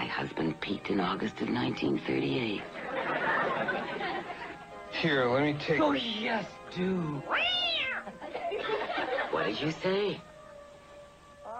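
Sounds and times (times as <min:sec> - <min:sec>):
speech: 0:00.9 - 0:02.8, 0:05.0 - 0:07.5, 0:09.5 - 0:10.3
laughter: 0:02.6 - 0:04.6, 0:08.0 - 0:09.9
cat meowing: 0:07.2 - 0:08.2, 0:11.4 - 0:11.5.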